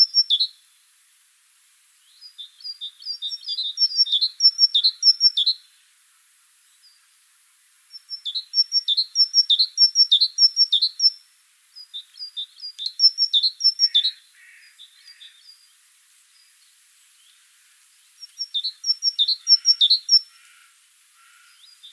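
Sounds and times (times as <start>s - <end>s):
Great tit Parus major chirping: 0.0s - 0.7s, 2.0s - 5.8s, 7.9s - 17.4s, 18.0s - 20.5s, 21.2s - 21.9s.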